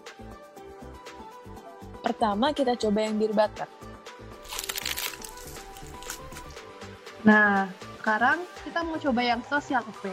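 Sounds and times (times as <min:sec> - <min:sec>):
speech: 0:02.0 - 0:03.8, 0:07.2 - 0:10.1
person biting into a crispy croffle: 0:04.4 - 0:06.6.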